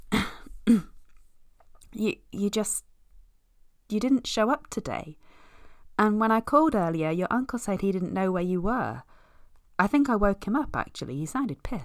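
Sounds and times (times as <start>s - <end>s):
man clearing his throat: 0.0s - 1.0s
speech: 0.7s - 0.9s, 2.0s - 2.9s, 3.9s - 5.2s, 6.0s - 9.1s, 9.8s - 11.8s.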